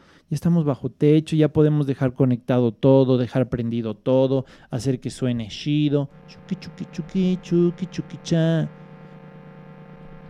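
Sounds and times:
speech: 0:00.3 - 0:08.8
buzzing electronic tone from an expensive synth: 0:05.6 - 0:10.2.

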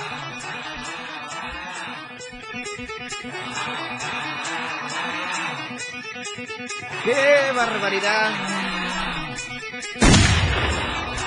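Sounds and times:
laughter: 0:00.0 - 0:10.0, 0:10.7 - 0:11.2
speech: 0:02.8 - 0:11.2
explosion sound effect with deep booming rumble: 0:10.0 - 0:11.2.

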